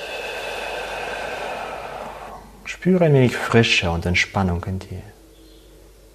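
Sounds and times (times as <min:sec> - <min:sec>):
deep exhale in a guided relaxation breathing exercise: 0:00.0 - 0:02.7
speech: 0:02.7 - 0:05.2.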